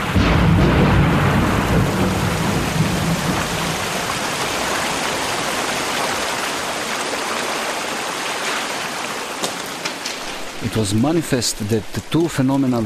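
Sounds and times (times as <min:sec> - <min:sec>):
deep rumble of thunder: 0:00.0 - 0:06.8
heavy rain pouring: 0:00.0 - 0:12.8
speech: 0:10.8 - 0:12.8.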